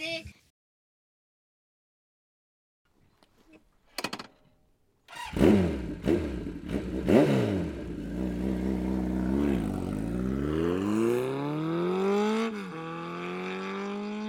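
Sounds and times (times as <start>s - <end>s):
Ferrari accelerating away fast: 5.3s - 14.2s.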